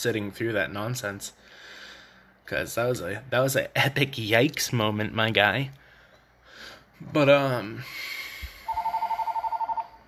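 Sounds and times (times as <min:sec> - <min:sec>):
speech: 0:00.0 - 0:01.8, 0:02.5 - 0:05.8, 0:06.6 - 0:08.2
telephone ringing in a living room: 0:08.7 - 0:10.0.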